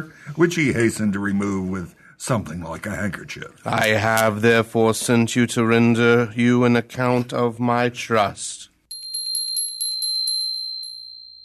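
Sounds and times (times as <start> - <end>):
speech: 0.0 - 8.7
small bright bell ringing rapidly: 8.9 - 11.4.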